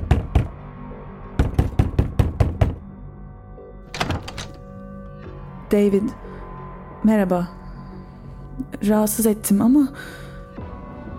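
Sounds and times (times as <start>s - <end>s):
knocking on a door: 0.0s - 0.6s, 1.4s - 2.9s
speech: 5.7s - 6.2s, 7.0s - 7.6s, 8.6s - 10.3s.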